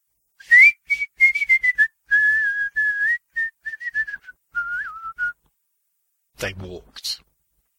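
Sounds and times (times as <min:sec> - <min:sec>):
person whistling a bouncy carnival-style calliope melody: 0:00.4 - 0:05.4
speech: 0:06.4 - 0:07.3.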